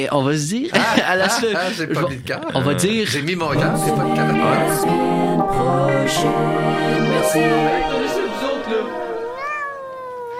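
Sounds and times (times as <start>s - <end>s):
speech: 0.0s - 8.2s
laughter: 0.7s - 4.7s
cat meowing in a radio jingle: 9.2s - 10.3s.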